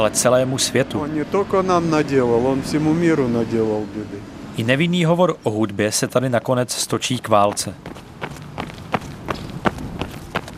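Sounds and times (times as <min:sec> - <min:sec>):
speech: 0:00.0 - 0:08.1
soft running footsteps of a jogger in town: 0:07.3 - 0:10.5.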